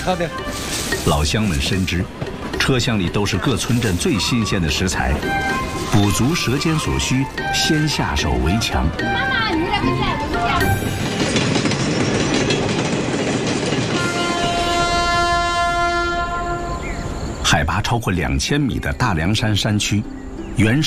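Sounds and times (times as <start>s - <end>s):
rattling wheel and carriage clatter: 0.0s - 16.1s
public-service slow passenger train rumbling: 0.0s - 20.8s
slow passenger train horn: 13.9s - 17.2s.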